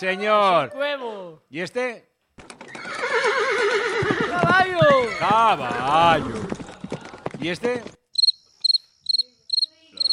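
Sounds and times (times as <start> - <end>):
speech: 0.0 - 6.5, 7.4 - 8.0
crickets chirping: 8.1 - 10.1.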